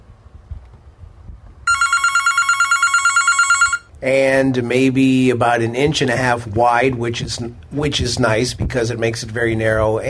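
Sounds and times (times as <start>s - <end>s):
telephone bell ringing: 1.7s - 3.9s
speech: 4.0s - 10.0s.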